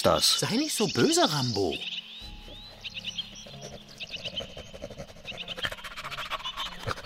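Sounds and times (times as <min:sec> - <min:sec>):
speech: 0:00.0 - 0:02.0
birds chirping and trilling outdoors: 0:00.0 - 0:07.0
breathy sniffing at droppings to pick up a trail: 0:02.4 - 0:07.0.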